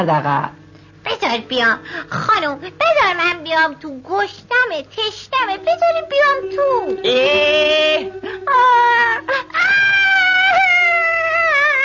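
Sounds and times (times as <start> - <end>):
speech: 0.0 - 0.6, 1.2 - 10.2
person crying and whimpering: 6.2 - 11.8.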